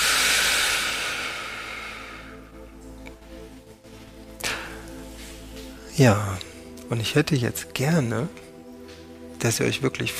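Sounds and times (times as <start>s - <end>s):
deep breathing during a guided relaxation exercise: 0.0s - 2.7s, 3.8s - 6.8s
soft sustained relaxation music: 0.0s - 10.1s
speech: 6.0s - 8.4s, 9.4s - 10.1s.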